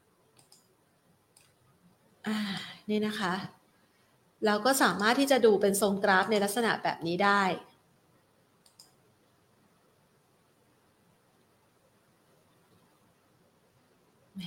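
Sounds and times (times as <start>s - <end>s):
steady low hiss: 0.0s - 14.4s
two quick light clicks: 0.3s - 0.7s, 8.6s - 9.0s
speech: 2.2s - 3.6s, 4.4s - 7.7s.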